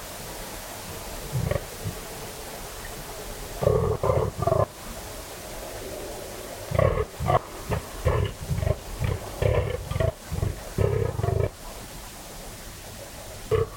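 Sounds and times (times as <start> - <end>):
fallow buck groaning in the rut on a cold still autumn night: 1.3 - 2.0, 3.6 - 4.7, 6.7 - 11.6, 13.5 - 13.7.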